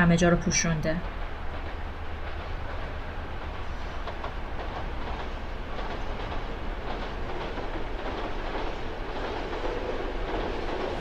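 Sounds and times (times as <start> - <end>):
speech: 0.0 - 1.2
train rumbling along rails: 0.0 - 11.0.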